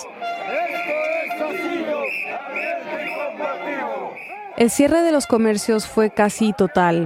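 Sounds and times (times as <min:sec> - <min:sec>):
large protest crowd chanting and shouting in Juliaca Peru: 0:00.0 - 0:07.0
shrill whistles: 0:00.1 - 0:04.6
speech: 0:02.4 - 0:07.0.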